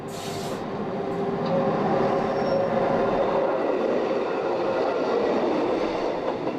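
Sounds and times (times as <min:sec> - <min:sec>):
locomotive-pulled train rumbling along rails up a mountain: 0:00.0 - 0:06.5
brief hiss: 0:00.1 - 0:00.6.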